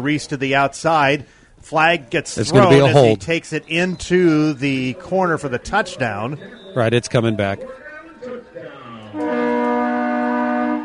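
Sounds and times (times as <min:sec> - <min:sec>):
speech: 0:00.0 - 0:08.4
train horn blaring at a football game after a touchdown: 0:09.1 - 0:10.8.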